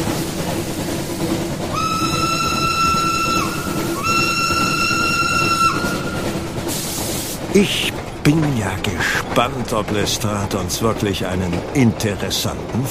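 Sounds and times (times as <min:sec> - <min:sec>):
steady low rumble of steam train engine and track noise: 0:00.0 - 0:12.8
steam train whistle at a station platform: 0:01.7 - 0:06.2
speech: 0:07.6 - 0:12.8.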